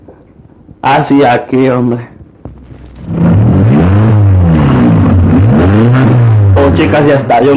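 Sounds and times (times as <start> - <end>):
speech: 0.8 - 2.1, 6.8 - 7.5
car engine cranking, starting and revving: 2.5 - 7.5.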